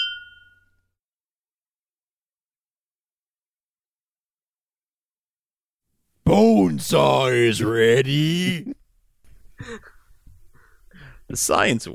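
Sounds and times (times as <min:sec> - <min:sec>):
beer glasses clinking in a toast: 0:00.0 - 0:00.6
speech: 0:06.3 - 0:08.8, 0:09.6 - 0:09.9, 0:11.3 - 0:11.9.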